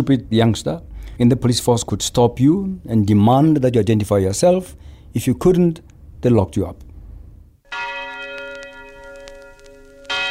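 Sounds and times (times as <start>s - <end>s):
speech: 0.0s - 6.8s
large bell tolling: 7.7s - 10.2s.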